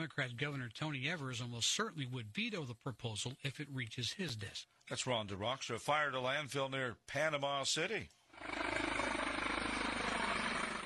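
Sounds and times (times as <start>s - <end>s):
speech: 0.0s - 8.8s
firefighting helicopter flying overhead with thumping rotor and engine roar: 8.4s - 10.8s.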